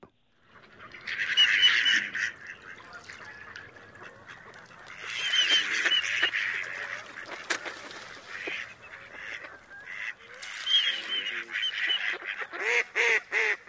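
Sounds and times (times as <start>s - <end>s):
mallard hen quacking at the drake: 0.8s - 13.6s
mallard drake courtship whistles: 5.1s - 6.3s, 10.6s - 12.1s.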